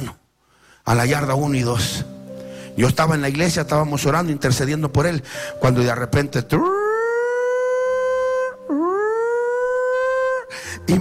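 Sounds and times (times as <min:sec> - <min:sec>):
speech: 0:00.8 - 0:02.1, 0:02.8 - 0:06.8
prison yard siren wailing: 0:06.6 - 0:10.5.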